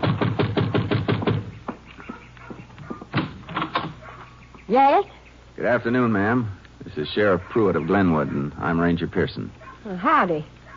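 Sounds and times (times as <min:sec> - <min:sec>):
firm raps knocking on a door: 0:00.0 - 0:04.0
speech: 0:04.7 - 0:10.6.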